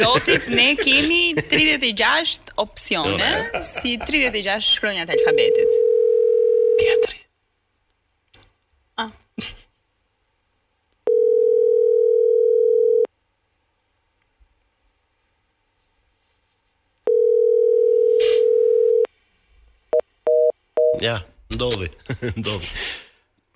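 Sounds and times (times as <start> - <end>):
laughter: 0.0 - 2.0, 3.1 - 4.7, 21.9 - 22.9
speech: 0.0 - 5.9, 6.8 - 7.2, 9.0 - 9.6, 21.0 - 23.0
ringback tone of an unanswered phone call: 5.2 - 6.8, 11.1 - 13.1, 17.1 - 19.1.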